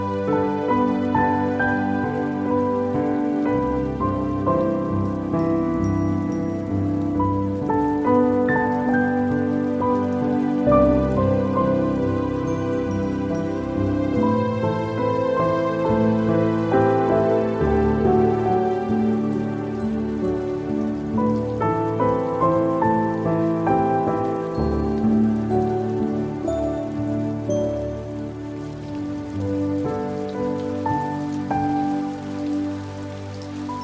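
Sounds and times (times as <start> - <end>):
constant hiss of rain: 0.0 - 33.8
soft piano playing sustained overlapping chords: 0.0 - 33.8.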